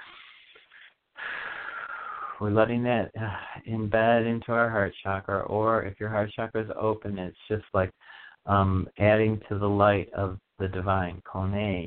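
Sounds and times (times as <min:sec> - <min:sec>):
deep breath in through the nose and out through the mouth: 0:00.0 - 0:02.4, 0:08.0 - 0:08.5
speech: 0:02.4 - 0:11.8.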